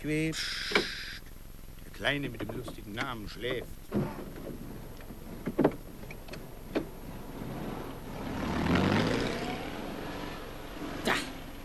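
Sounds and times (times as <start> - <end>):
speech: 0.0 - 0.9, 2.0 - 4.7
clicks and thumps: 2.2 - 7.0
car driving away: 4.2 - 11.6.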